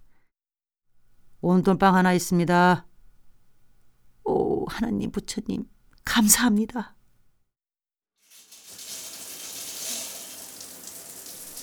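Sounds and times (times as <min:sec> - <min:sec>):
speech: 0:01.4 - 0:02.9, 0:04.7 - 0:07.0
shower water running: 0:08.2 - 0:11.6.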